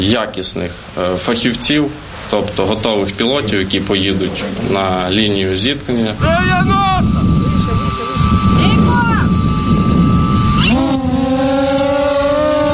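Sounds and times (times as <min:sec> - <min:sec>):
speech: 0:00.0 - 0:07.4
constant loud wind-like rushing noise: 0:00.7 - 0:12.7
Vector fixed-wing reconnaissance drone motor whining: 0:06.2 - 0:12.7.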